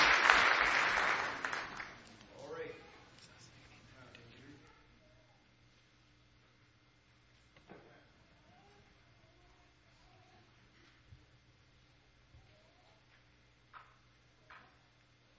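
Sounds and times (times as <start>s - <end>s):
audience clapping in praise of God: 0.0s - 2.4s.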